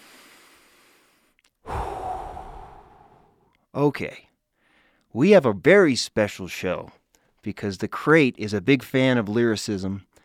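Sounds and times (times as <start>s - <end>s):
person taking a breath mid-speech: 0.0s - 3.4s, 4.6s - 5.1s
speech: 3.8s - 4.3s, 5.1s - 10.1s.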